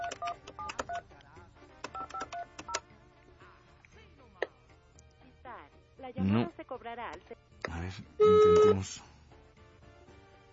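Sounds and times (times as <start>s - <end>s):
telephone keypad dialing tones: 0.0s - 1.0s, 1.8s - 2.8s
speech: 6.1s - 9.1s.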